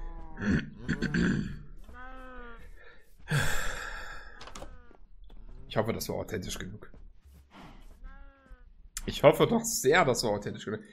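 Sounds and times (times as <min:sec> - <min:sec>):
person grumbling: 0:00.3 - 0:02.7
person clearing throat: 0:00.4 - 0:01.6
speech: 0:00.4 - 0:01.6, 0:05.8 - 0:07.0, 0:09.0 - 0:10.9.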